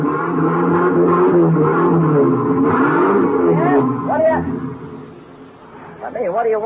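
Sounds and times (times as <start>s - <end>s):
vehicle engine revving at a truck rental garage: 0.0s - 6.1s
speech: 6.2s - 6.6s.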